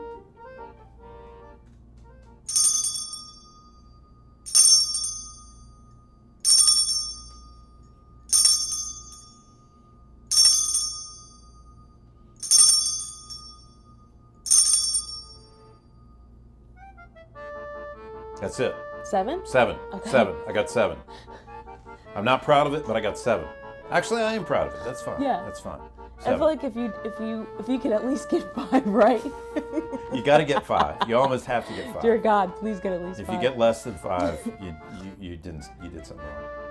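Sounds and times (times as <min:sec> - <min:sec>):
low hum: 0:00.0 - 0:36.6
bright metallic chime ringing: 0:02.5 - 0:09.6, 0:10.3 - 0:15.8
speech: 0:18.4 - 0:21.3, 0:22.2 - 0:36.6
laughter: 0:19.9 - 0:21.3, 0:28.2 - 0:32.2, 0:33.4 - 0:35.1.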